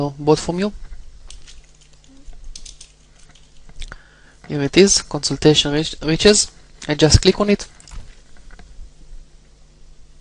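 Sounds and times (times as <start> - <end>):
speech: 0.0 - 0.9, 4.5 - 7.8
faint steady hum: 0.0 - 10.2
quiet crisp keystrokes on a computer keyboard: 1.3 - 3.6.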